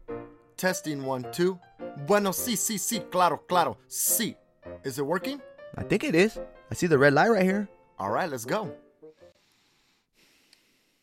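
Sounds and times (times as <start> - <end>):
speech: 0.6 - 8.8
heavy breathing into a microphone: 9.0 - 11.0.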